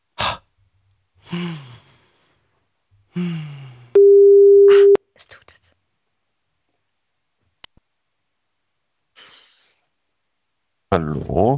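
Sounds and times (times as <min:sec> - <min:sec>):
sighing breaths falling in pitch: 0:01.2 - 0:02.4, 0:03.1 - 0:04.0
speech: 0:01.3 - 0:01.7, 0:10.9 - 0:11.5
phone call tone after pressing call button: 0:04.0 - 0:05.0.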